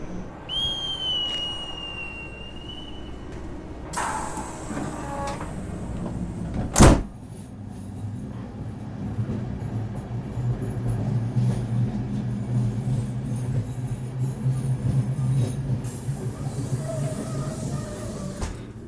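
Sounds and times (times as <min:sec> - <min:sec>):
train rumbling as it pulls away: 0:00.0 - 0:18.8
shrill whistle on a train platform: 0:00.4 - 0:03.2
train doors slamming shut: 0:02.7 - 0:07.3, 0:16.2 - 0:18.8.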